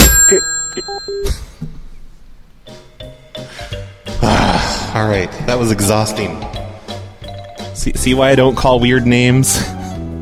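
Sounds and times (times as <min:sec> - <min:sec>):
brief metallic telephone bell ring: 0:00.0 - 0:01.6
speech: 0:05.0 - 0:06.6, 0:07.8 - 0:09.8.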